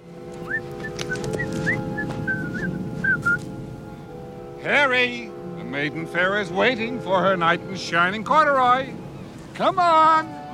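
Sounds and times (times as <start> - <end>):
rumble: 0.0 - 10.5
steady low hum: 0.0 - 10.5
person whistling a jaunty tune: 0.4 - 3.4
speech: 4.6 - 9.0, 9.6 - 10.4.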